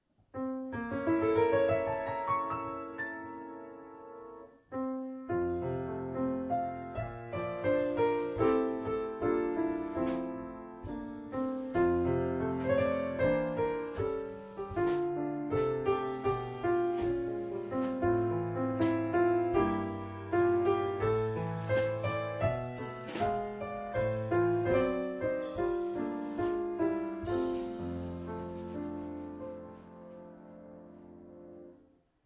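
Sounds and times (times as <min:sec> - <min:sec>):
piano: 0:00.0 - 0:32.2
drums: 0:09.9 - 0:18.2, 0:18.8 - 0:29.1.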